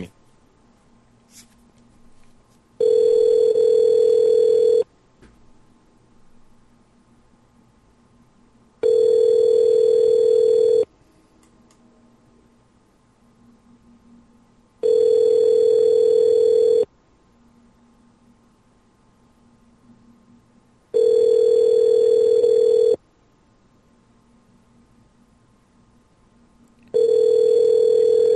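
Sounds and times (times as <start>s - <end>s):
phone ringback tone: 2.8s - 4.9s, 8.8s - 10.9s, 14.8s - 16.9s, 20.9s - 23.0s, 26.9s - 28.3s.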